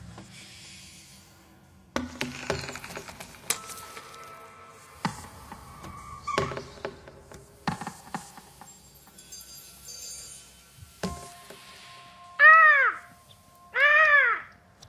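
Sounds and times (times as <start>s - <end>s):
loud drawn-out seagull cries as a sound effect in a TV series theme tune: 12.4s - 13.1s, 13.7s - 14.5s.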